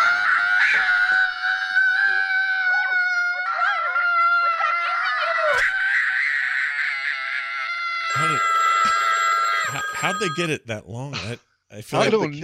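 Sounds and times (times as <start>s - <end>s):
child screaming shrilly in a horror film clip: 0.0s - 9.9s
speech: 10.2s - 12.4s.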